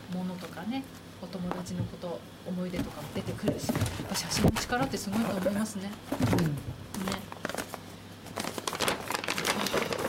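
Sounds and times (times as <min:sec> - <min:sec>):
speech: 0:00.6 - 0:07.3
paper bag being handled, crinkling: 0:07.0 - 0:10.0.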